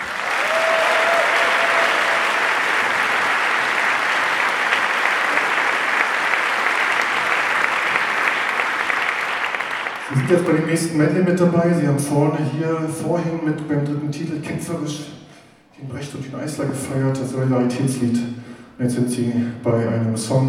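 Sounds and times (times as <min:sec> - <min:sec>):
large theatre audience applauding as a choir appears on stage: 0:00.0 - 0:10.6
speech: 0:10.3 - 0:15.2, 0:15.8 - 0:20.4.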